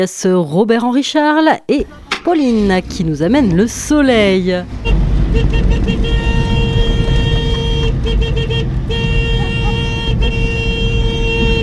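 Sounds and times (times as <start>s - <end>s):
speech: 0.0s - 6.2s
low engine rumble: 1.7s - 11.6s
Citroën 2CV car horn honking: 4.0s - 11.6s.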